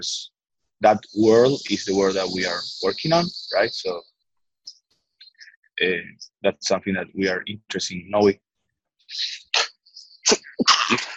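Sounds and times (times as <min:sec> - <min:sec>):
speech: 0:00.0 - 0:04.1, 0:05.8 - 0:08.4, 0:09.1 - 0:09.7
person sneezing: 0:09.6 - 0:11.1.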